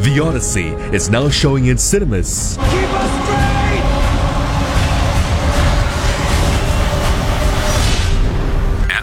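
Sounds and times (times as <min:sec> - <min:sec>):
speech: 0:00.1 - 0:03.2
train rumbling along rails: 0:02.5 - 0:08.9.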